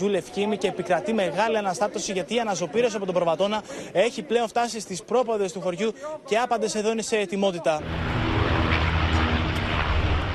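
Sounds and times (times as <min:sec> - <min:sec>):
speech: 0:00.0 - 0:08.4
firefighting propeller aircraft roaring overhead during a wildfire: 0:07.8 - 0:10.3.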